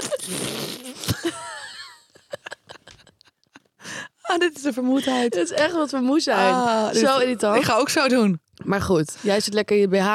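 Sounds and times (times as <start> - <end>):
drawn-out raspy fart with a sharp pop and squeaky tail: 0.0 - 1.3
speech: 4.4 - 10.1.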